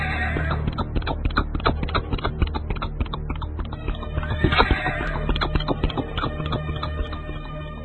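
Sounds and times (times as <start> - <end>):
horse hooves galloping on a stone-slab street: 0.0 - 7.7
horse whinny: 4.2 - 5.4.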